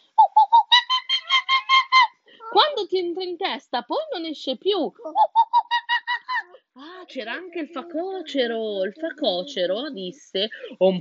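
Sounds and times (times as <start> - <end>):
voice imitating monkey shrieks: 0.2 - 2.2, 5.0 - 6.6
speech: 2.9 - 5.5, 6.8 - 10.9.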